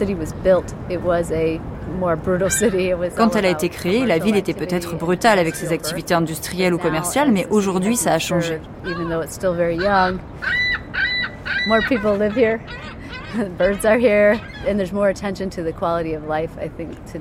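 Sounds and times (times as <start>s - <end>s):
speech: 0.0s - 10.8s, 11.6s - 17.1s
murmur of outdoor noise in a city park: 0.0s - 17.1s
nasal honking calls of birds in a city park: 2.4s - 14.8s
laughter: 11.8s - 13.9s.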